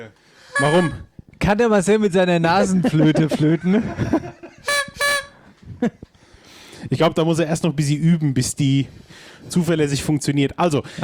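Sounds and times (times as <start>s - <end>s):
speech: 0.0s - 4.4s, 5.8s - 6.1s, 6.9s - 11.0s
toy party horn being blown: 0.6s - 1.1s, 4.7s - 5.4s
laughter: 2.7s - 4.8s.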